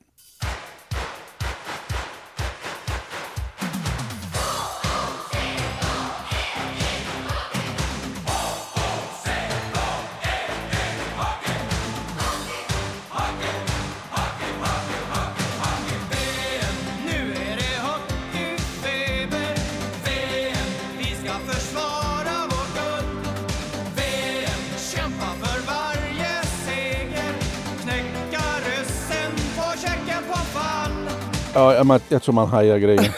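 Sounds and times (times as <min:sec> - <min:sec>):
sharp spaced drum hits: 0:00.0 - 0:21.2
group of hockey players singing a rousing team anthem over a backing band: 0:04.4 - 0:23.3, 0:23.9 - 0:31.1
speech: 0:31.6 - 0:33.1
laughter: 0:33.0 - 0:33.1.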